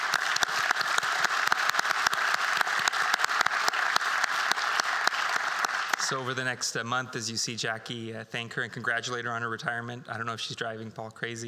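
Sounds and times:
room full of people applauding for retiring staff member: 0:00.0 - 0:06.3
speech: 0:06.1 - 0:11.4.

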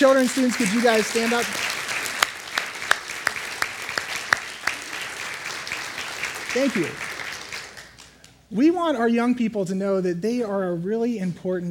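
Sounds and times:
speech: 0:00.0 - 0:01.7, 0:06.6 - 0:07.1, 0:08.5 - 0:11.6
room full of people applauding: 0:00.0 - 0:08.4.

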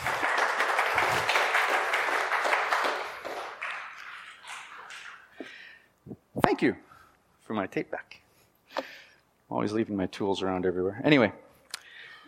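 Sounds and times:
audience applause: 0:00.0 - 0:05.3
speech: 0:06.6 - 0:06.9, 0:07.5 - 0:08.2, 0:09.5 - 0:11.4.

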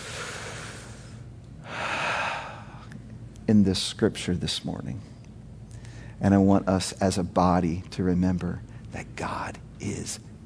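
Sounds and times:
person taking a deep breath during a church sermon: 0:00.0 - 0:03.0
speech: 0:03.5 - 0:05.1, 0:06.2 - 0:10.3.

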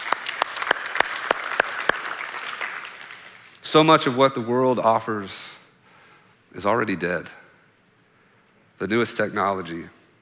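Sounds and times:
crowd applauding: 0:00.0 - 0:03.6
speech: 0:03.7 - 0:05.6, 0:06.6 - 0:07.4, 0:08.8 - 0:10.0.

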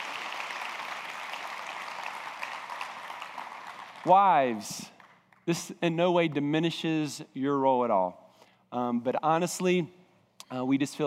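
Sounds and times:
crowd of women applauding: 0:00.0 - 0:05.4
speech: 0:04.0 - 0:11.0.

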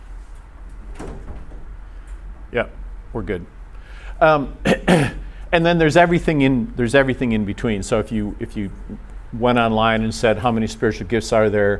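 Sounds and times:
steady low rumble: 0:00.0 - 0:11.7
door opening with clunk and scraping rattle: 0:00.6 - 0:02.4
speech: 0:02.5 - 0:03.6, 0:04.2 - 0:11.7.

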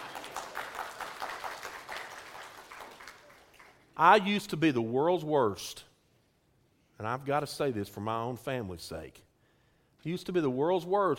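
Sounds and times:
audience applause: 0:00.0 - 0:04.0
speech: 0:04.0 - 0:05.9, 0:07.0 - 0:09.3, 0:10.0 - 0:11.1.

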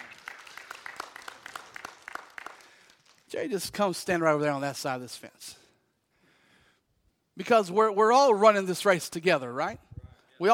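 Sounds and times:
crowd applauding: 0:00.0 - 0:03.3
speech: 0:03.4 - 0:05.6, 0:07.4 - 0:09.8.

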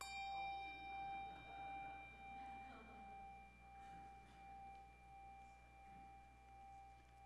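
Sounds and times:
hand bell ringing: 0:00.0 - 0:07.2.

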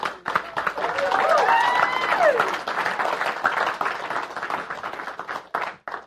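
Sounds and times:
crowd applauding with dense clapping: 0:00.0 - 0:06.0
whooping cheers: 0:00.7 - 0:02.7.

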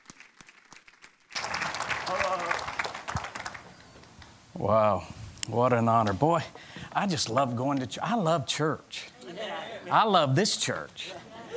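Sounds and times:
crowd applauding: 0:00.0 - 0:03.9
speech: 0:04.6 - 0:09.2, 0:09.8 - 0:11.2.

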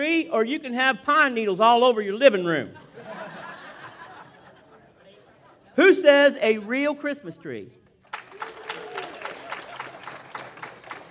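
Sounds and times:
speech: 0:00.0 - 0:03.2, 0:05.8 - 0:07.8
laughter: 0:02.8 - 0:05.8
tepid applause from church audience: 0:08.0 - 0:11.0.

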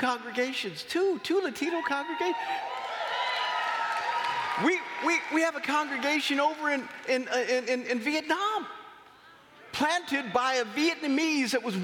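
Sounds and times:
speech: 0:00.0 - 0:02.8, 0:04.6 - 0:08.8, 0:09.8 - 0:11.8
large audience clapping: 0:02.6 - 0:07.8.

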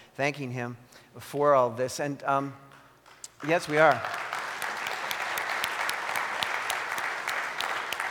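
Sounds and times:
speech: 0:00.2 - 0:02.7, 0:03.4 - 0:04.2
congregation applauding: 0:03.0 - 0:08.0.

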